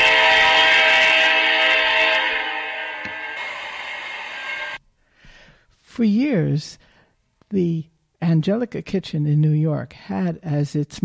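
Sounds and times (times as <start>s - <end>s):
train horn blaring: 0.0s - 4.8s
speech: 6.0s - 6.9s, 7.5s - 11.0s.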